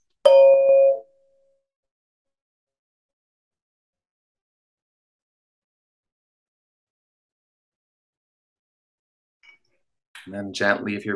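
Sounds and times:
meditation bell struck and ringing: 0.3s - 1.1s
speech: 10.2s - 11.1s.

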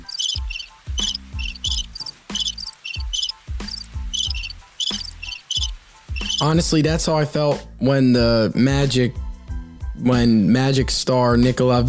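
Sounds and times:
cricket chirps: 0.0s - 6.5s
speech: 6.4s - 9.2s, 10.0s - 11.8s.

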